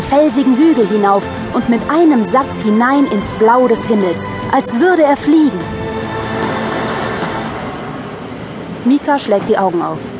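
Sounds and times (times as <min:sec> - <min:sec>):
speech: 0:00.1 - 0:05.9, 0:08.8 - 0:10.1
subway train rumbling along: 0:00.7 - 0:10.1
high whining tones of subway train: 0:02.8 - 0:09.0
subway train metallic wheel squeal: 0:06.0 - 0:10.1.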